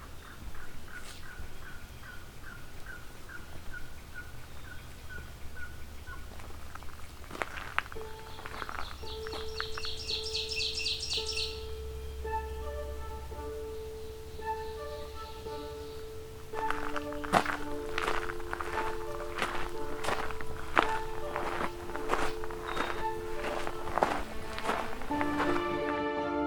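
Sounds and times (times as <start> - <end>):
buzzy bird calls: 0.0 - 25.5
yellow-billed cuckoo hollow notes in a swamp: 7.9 - 25.8.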